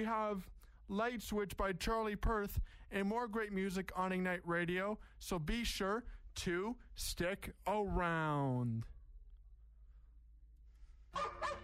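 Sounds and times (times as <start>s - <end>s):
speech: 0.0s - 8.9s, 11.1s - 11.6s
dog barking: 11.2s - 11.6s.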